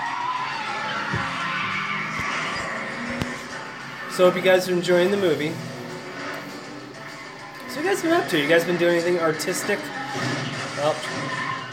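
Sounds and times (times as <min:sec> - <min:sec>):
truck tires skidding and screeching while being wrecked: 0:00.0 - 0:11.7
thumps: 0:01.0 - 0:03.5
speech: 0:04.2 - 0:05.7, 0:07.8 - 0:11.5.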